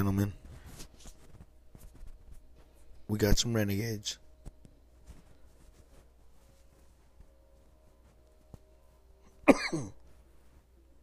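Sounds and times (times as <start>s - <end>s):
speech: 0.0s - 0.4s, 3.1s - 4.2s, 9.5s - 10.0s
person coughing: 9.4s - 10.0s.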